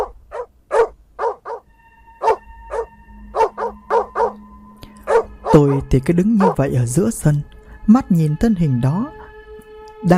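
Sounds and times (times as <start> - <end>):
black dog chained near a gate barking furiously: 0.0 - 4.4, 5.0 - 5.8, 6.4 - 6.7
speech: 5.5 - 9.2.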